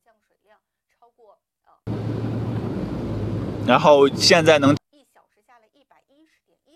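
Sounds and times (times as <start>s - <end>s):
car driving through water on a soaked road with low engine drone: 1.9s - 4.8s
speech: 3.7s - 4.8s.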